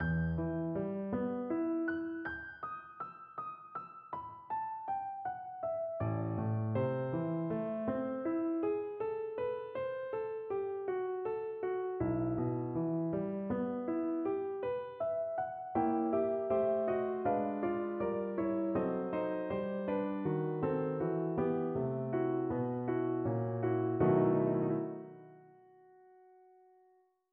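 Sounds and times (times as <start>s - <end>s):
piano concerto slow movement: 0.0s - 26.4s.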